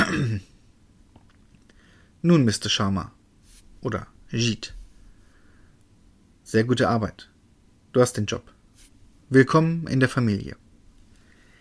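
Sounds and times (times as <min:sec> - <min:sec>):
gruff throat clearing: 0:00.0 - 0:00.5
speech: 0:02.2 - 0:03.2, 0:03.8 - 0:04.8, 0:06.5 - 0:07.3, 0:07.9 - 0:08.6, 0:09.3 - 0:10.6.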